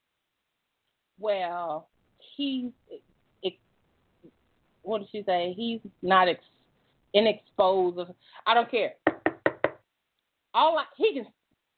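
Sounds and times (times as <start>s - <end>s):
speech: 1.2s - 3.6s, 4.8s - 6.5s, 7.1s - 9.0s, 10.6s - 11.4s
knocking on a door: 9.0s - 9.8s.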